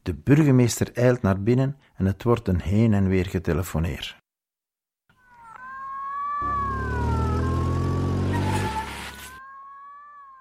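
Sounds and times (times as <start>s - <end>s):
speech: 0.0s - 4.2s
police siren wailing: 5.4s - 10.3s
loud low engine rumble: 6.4s - 9.2s.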